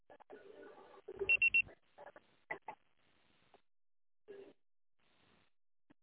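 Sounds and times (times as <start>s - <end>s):
single loud electronic voicemail beep: 1.2s - 1.6s.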